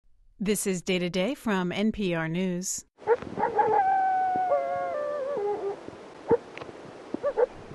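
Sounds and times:
speech: 0.4s - 3.2s
Arctic wolf barking and yipping in the Alaskan wilderness: 3.0s - 6.5s, 7.2s - 7.6s
Arctic wolf howling in the Alaskan wilderness: 3.4s - 6.4s.

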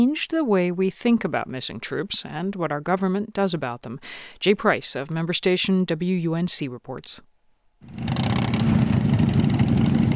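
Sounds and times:
speech: 0.0s - 8.7s
motorcycle engines rumbling as riders arrive at a military memorial garden: 7.9s - 10.1s.

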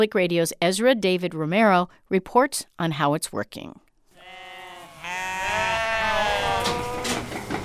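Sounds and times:
speech: 0.0s - 3.8s
sheep bleating on a sheep dairy farm in California's Central Valley: 4.2s - 7.4s
steady farmyard murmur: 4.2s - 7.6s.

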